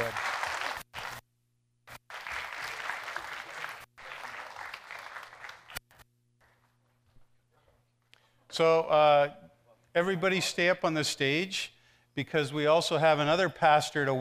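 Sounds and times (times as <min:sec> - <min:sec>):
church audience applauding: 0:00.0 - 0:01.2, 0:01.9 - 0:05.8
speech: 0:08.6 - 0:14.1.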